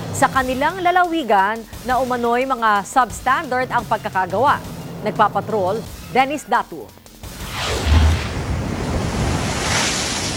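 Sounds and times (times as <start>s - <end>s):
speech: 0.2s - 7.0s
heavy sea waves crashing: 7.3s - 10.3s.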